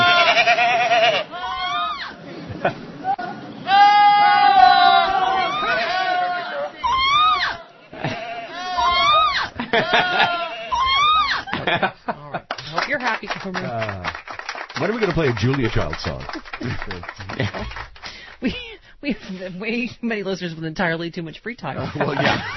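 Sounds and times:
goat screaming: 0:00.0 - 0:02.2, 0:03.7 - 0:11.4
laughter: 0:02.3 - 0:03.2, 0:07.8 - 0:14.0, 0:14.8 - 0:18.8, 0:21.8 - 0:22.5
speech: 0:02.6 - 0:02.8, 0:09.8 - 0:10.4, 0:11.7 - 0:12.0, 0:12.9 - 0:14.2, 0:14.8 - 0:22.5.

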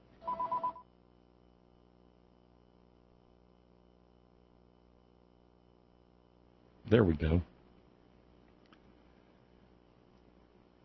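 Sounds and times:
low hum: 0:00.0 - 0:10.8
telephone ringing with electronic chirps: 0:00.2 - 0:00.8
speech: 0:06.9 - 0:07.5.

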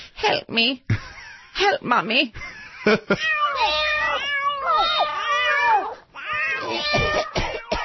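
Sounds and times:
speech: 0:00.2 - 0:03.8, 0:06.7 - 0:07.4
several cats meowing: 0:02.7 - 0:07.8.

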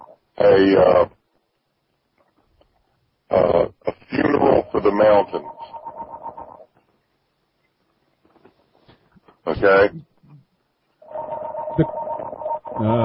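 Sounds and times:
speech: 0:00.4 - 0:01.2, 0:04.8 - 0:05.8, 0:09.5 - 0:10.1, 0:11.8 - 0:12.0, 0:12.8 - 0:13.0
studio telephone ringing with buzzy warbling electronic tone: 0:04.6 - 0:06.7, 0:11.0 - 0:13.0.

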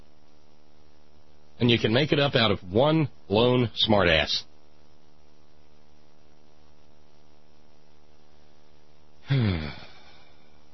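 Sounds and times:
speech: 0:01.6 - 0:04.5, 0:09.3 - 0:09.8
sharp breathy gasp: 0:09.2 - 0:10.6.

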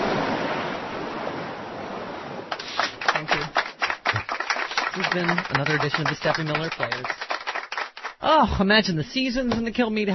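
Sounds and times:
ocean waves washing onto a beach: 0:00.0 - 0:07.3
speech: 0:05.0 - 0:07.3, 0:08.2 - 0:10.1.

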